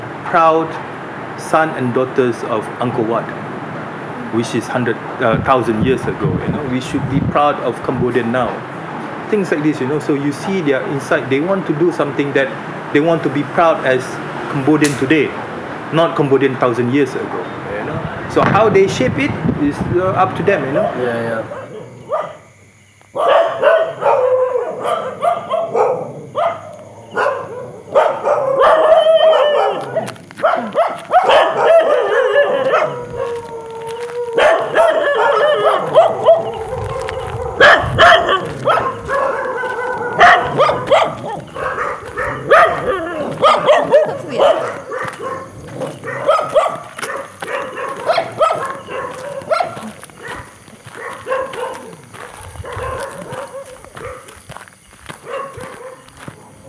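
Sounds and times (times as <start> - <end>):
speech: 0.3 - 3.4, 4.3 - 8.7, 9.3 - 17.6, 18.3 - 21.6
several dogs barking, yipping and howling: 20.6 - 22.4, 23.1 - 56.6.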